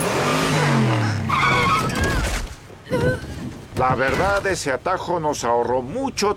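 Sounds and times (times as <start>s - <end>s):
car driving fast: 0.0s - 1.9s
tires squealing as the car skids and swerves: 0.0s - 3.0s
speech: 3.8s - 6.3s.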